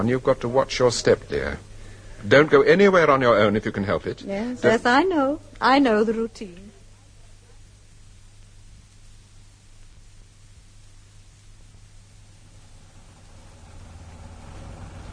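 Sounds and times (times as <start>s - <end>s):
speech: 0.0s - 6.7s
dense continuous roar of heavy road traffic: 12.6s - 15.1s.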